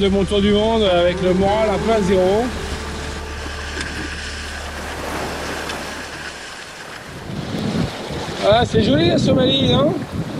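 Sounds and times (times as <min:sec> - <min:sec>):
speech: 0:00.0 - 0:02.7, 0:08.4 - 0:10.1
sailboat rigging noise: 0:00.0 - 0:07.9
low rumble: 0:00.0 - 0:08.0
steady wind rushing over a sailboat: 0:00.0 - 0:10.3
water: 0:00.0 - 0:10.3.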